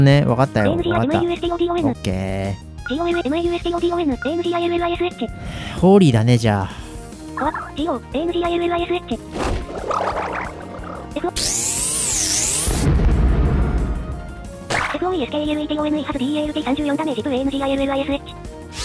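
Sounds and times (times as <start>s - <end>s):
speech: 0.0s - 6.8s, 7.4s - 10.0s, 15.0s - 18.8s
video game explosion: 11.4s - 14.0s.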